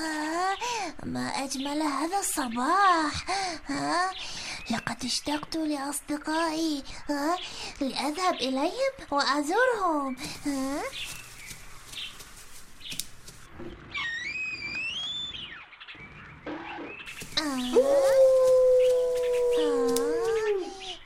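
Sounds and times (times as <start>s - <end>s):
speech: 0.9s - 11.2s, 17.4s - 18.5s
high chirping calls: 10.0s - 21.0s
wolf howling: 17.4s - 21.0s.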